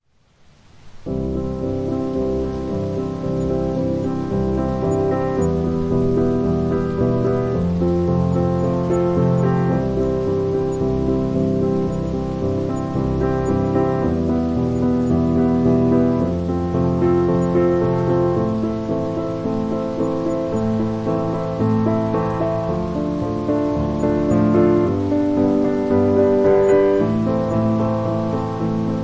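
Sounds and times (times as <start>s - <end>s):
rain: 0.0s - 29.0s
classical piano study: 1.0s - 29.0s.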